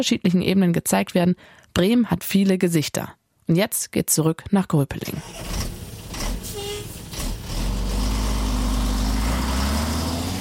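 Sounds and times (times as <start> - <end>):
speech: 0.0 - 5.7
heavy truck engine idling: 5.3 - 10.4.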